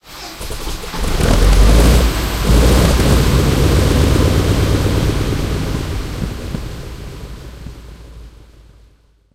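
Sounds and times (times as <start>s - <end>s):
Sherman M4A1 tank engine starting, heard from interior: 0.0s - 7.0s.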